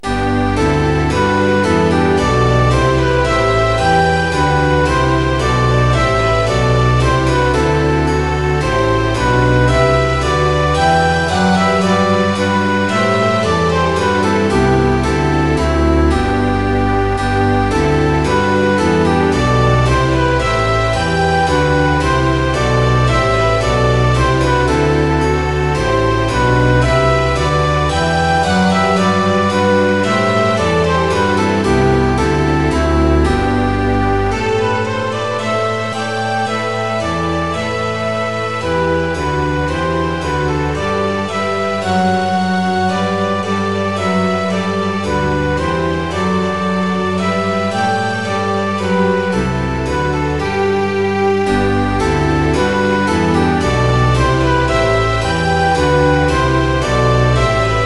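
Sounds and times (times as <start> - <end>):
flute: 0.0 - 57.8
orchestral version: 0.0 - 57.8.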